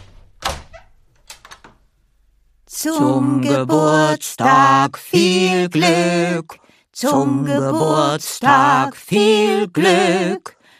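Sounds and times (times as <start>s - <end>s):
door opening with latch thunk: 0.0s - 1.8s
speech: 2.8s - 10.6s.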